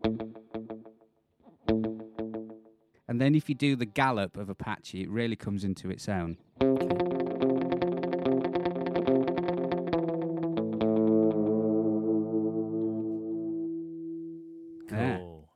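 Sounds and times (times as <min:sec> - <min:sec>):
twangy electric guitar riff through a multi-head tape echo: 0:00.0 - 0:03.1, 0:06.5 - 0:15.3
speech: 0:03.2 - 0:07.4
brief voice: 0:14.9 - 0:15.5.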